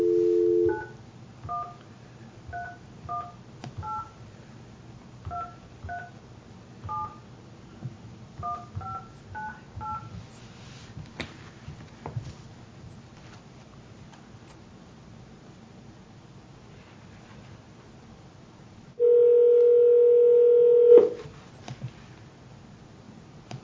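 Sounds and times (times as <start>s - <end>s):
telephone dial tone: 0.0s - 0.9s, 19.0s - 21.2s.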